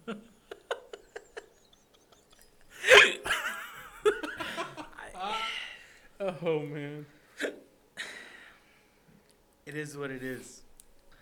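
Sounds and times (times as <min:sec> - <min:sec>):
person laughing: 0:00.0 - 0:05.8
hiccups: 0:02.8 - 0:03.4
speech: 0:06.4 - 0:07.6, 0:09.7 - 0:10.6.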